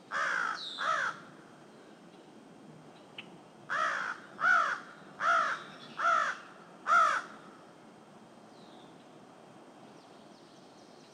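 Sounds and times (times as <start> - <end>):
faint steady hiss: 0.0 - 11.1
crow harsh nasal caw: 0.1 - 1.3, 3.7 - 7.6.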